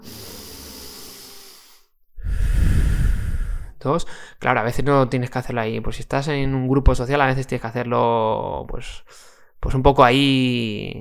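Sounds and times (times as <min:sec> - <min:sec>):
deep breath taken as a calming exercise: 0:00.0 - 0:04.4, 0:09.0 - 0:09.6
speech: 0:03.8 - 0:10.9.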